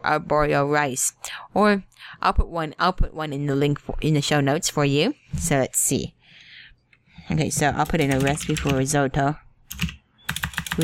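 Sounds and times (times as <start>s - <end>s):
speech: 0.0s - 6.2s, 7.3s - 9.9s
clacky computer keyboard typing: 7.8s - 8.9s, 9.7s - 10.8s.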